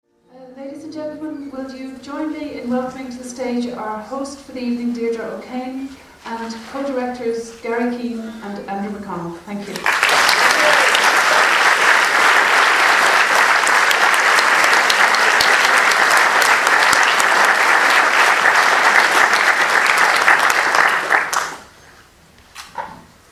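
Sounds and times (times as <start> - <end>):
faint room noise: 0.1 - 23.3
speech: 0.9 - 10.3
large audience clapping after a film screening: 9.6 - 21.8.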